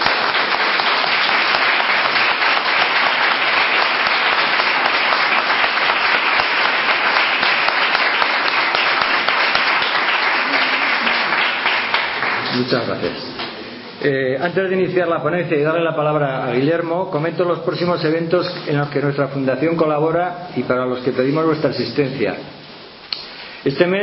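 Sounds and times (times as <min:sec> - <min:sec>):
large audience applauding: 0:00.0 - 0:13.5
speech: 0:12.6 - 0:13.4, 0:14.0 - 0:22.6, 0:23.6 - 0:24.0.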